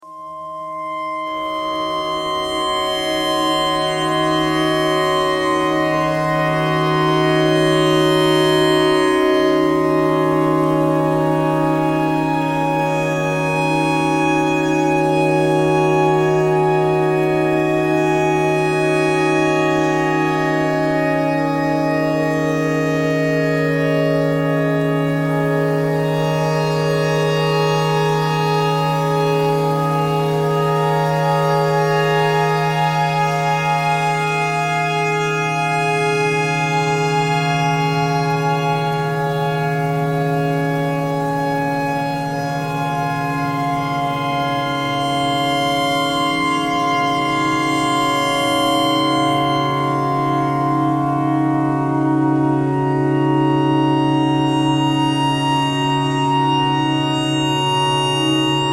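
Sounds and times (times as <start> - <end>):
pentatonic clarinet notes: 0.0 - 58.7
tornado siren: 0.0 - 58.7.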